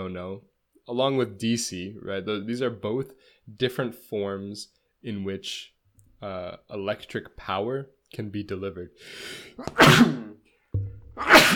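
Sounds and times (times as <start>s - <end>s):
speech: 0.0s - 10.3s, 11.2s - 11.5s
sneeze: 9.6s - 10.4s, 11.2s - 11.5s.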